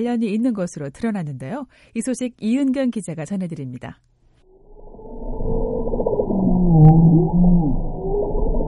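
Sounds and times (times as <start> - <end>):
speech: 0.0 - 4.1
deep underwater rumble: 4.5 - 8.6
bowhead whale calling in the deep sea: 4.7 - 8.6.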